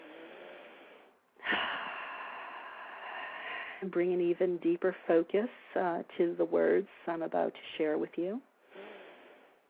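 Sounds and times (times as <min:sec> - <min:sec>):
deep breath taken at the start of a guided prayer: 0:00.0 - 0:03.8, 0:08.6 - 0:09.6
speech: 0:03.8 - 0:08.5.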